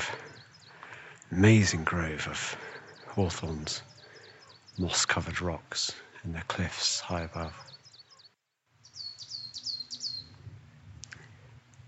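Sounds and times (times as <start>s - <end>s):
speech: 1.3s - 3.9s, 4.8s - 7.7s
coal tit calling in a hazel hawthorn high on cliffs: 2.6s - 5.0s, 7.0s - 10.3s.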